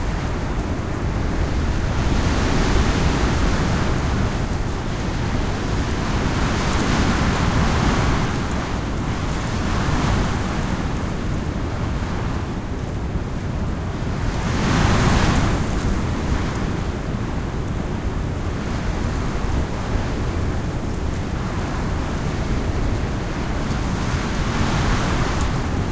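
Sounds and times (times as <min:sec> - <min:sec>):
intense ambient wind: 0:00.0 - 0:25.9.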